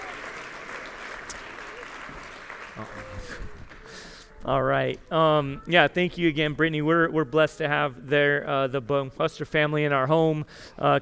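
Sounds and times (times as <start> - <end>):
church congregation applause: 0.0 - 4.1
speech: 2.8 - 3.6, 4.4 - 11.0.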